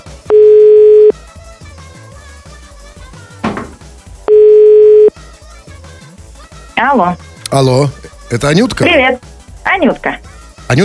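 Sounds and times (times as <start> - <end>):
telephone ringback tones while placing a call: 0.0 - 1.1, 4.3 - 5.1
faint music: 0.0 - 10.8
speech: 6.8 - 10.8.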